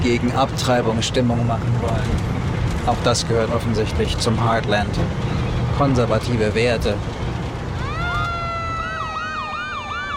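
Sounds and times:
speech: 0:00.0 - 0:07.2
low rumble of traffic: 0:00.0 - 0:10.1
emergency vehicle sirens wailing at a parade: 0:07.6 - 0:10.1.

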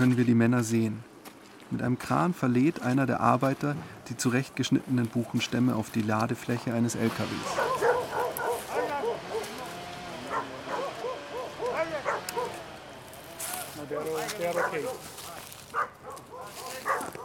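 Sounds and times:
speech: 0:00.0 - 0:01.1, 0:01.7 - 0:07.9, 0:14.3 - 0:16.0
several dogs barking: 0:07.4 - 0:13.0, 0:14.0 - 0:17.2
people's voices calling out: 0:07.6 - 0:15.1.

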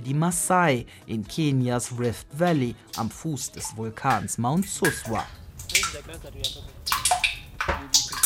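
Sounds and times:
speech: 0:00.0 - 0:07.1
large water drops falling into a plastic tank: 0:02.0 - 0:08.2.

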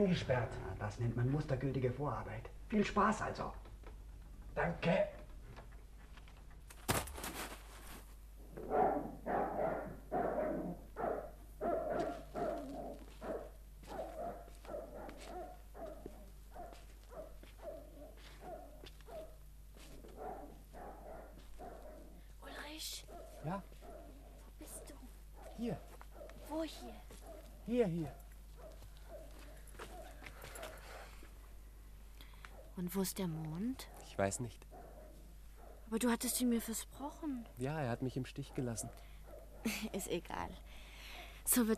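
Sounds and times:
speech: 0:00.0 - 0:03.7, 0:04.6 - 0:05.2, 0:27.7 - 0:28.2, 0:32.9 - 0:34.8, 0:35.9 - 0:40.9, 0:41.5 - 0:41.7
low hum: 0:00.0 - 0:41.7
dog barking: 0:08.6 - 0:31.2, 0:32.4 - 0:32.8, 0:33.8 - 0:36.7, 0:38.4 - 0:40.2.

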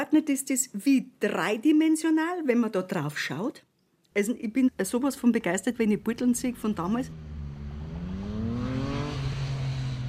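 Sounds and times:
speech: 0:00.0 - 0:07.3
steady road traffic rumbling: 0:04.7 - 0:10.0
car engine droning past: 0:05.8 - 0:10.0.

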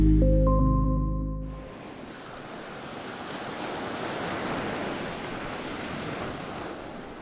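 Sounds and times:
brief sustained musical tone: 0:00.0 - 0:01.8
soft waves washing onto a sandy shore: 0:01.7 - 0:07.1.

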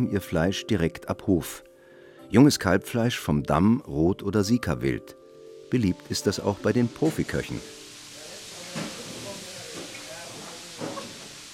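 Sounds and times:
speech: 0:00.0 - 0:01.7, 0:02.3 - 0:07.8
steam hissing from cooking pots in a large kitchen: 0:05.3 - 0:11.5.

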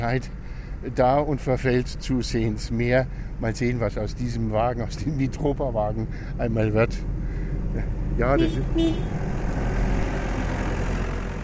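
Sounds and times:
speech: 0:00.0 - 0:09.3
forklift engine driving past carrying two sacks of gravel: 0:05.6 - 0:11.4.

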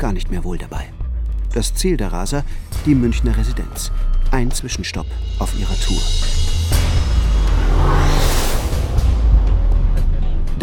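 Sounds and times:
speech: 0:00.1 - 0:07.1
car engine revving at over 100 km/h through a city centre: 0:06.0 - 0:10.6.

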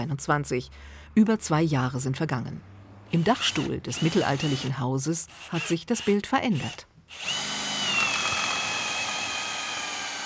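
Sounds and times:
speech: 0:00.0 - 0:07.6
power drill drilling into a wooden beam: 0:03.2 - 0:04.7, 0:05.3 - 0:10.2.

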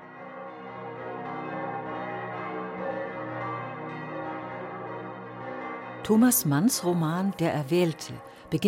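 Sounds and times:
dense peal of church bells: 0:00.0 - 0:08.6
speech: 0:06.1 - 0:08.6.

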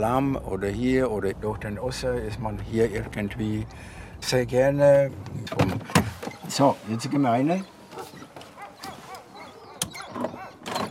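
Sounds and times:
speech: 0:00.0 - 0:08.1
hungry dogs barking and yelping excitedly: 0:06.8 - 0:10.8.

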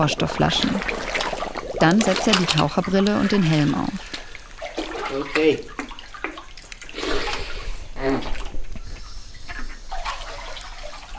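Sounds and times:
speech: 0:00.0 - 0:01.2, 0:01.8 - 0:04.1, 0:05.1 - 0:05.8
person wading into clear shallow water with a film of lime: 0:00.0 - 0:11.1.

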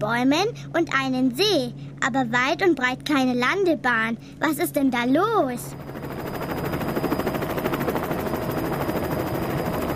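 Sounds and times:
speech: 0:00.0 - 0:05.9
helicopter engine roar: 0:04.2 - 0:09.9
helicopter rotor thumping overhead: 0:05.5 - 0:09.9.

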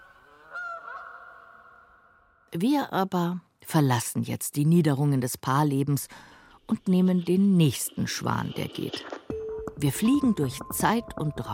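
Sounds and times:
goose honking near a shore: 0:00.0 - 0:01.8
speech: 0:02.5 - 0:09.2, 0:09.8 - 0:11.5.

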